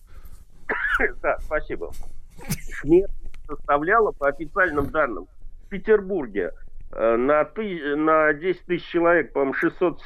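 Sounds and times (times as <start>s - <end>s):
person sneezing: 0.7s - 1.3s
speech: 1.0s - 10.0s.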